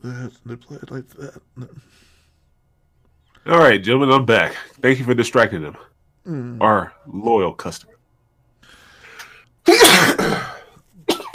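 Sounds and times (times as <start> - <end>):
speech: 0.0 - 2.1, 3.4 - 8.0
person coughing into the microphone: 0.7 - 1.9, 9.6 - 11.3
person sneezing into the microphone: 9.7 - 11.3.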